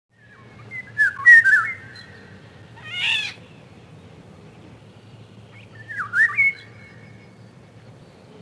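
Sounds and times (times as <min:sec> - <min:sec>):
Eurasian golden oriole giving mellow yodelling whistles in spring: 0:00.7 - 0:02.1, 0:05.5 - 0:07.2.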